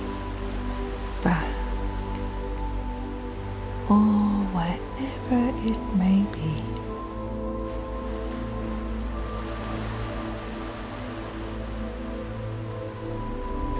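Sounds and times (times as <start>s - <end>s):
ocean waves: 0.0s - 13.7s
speech: 1.2s - 1.5s, 3.9s - 4.3s.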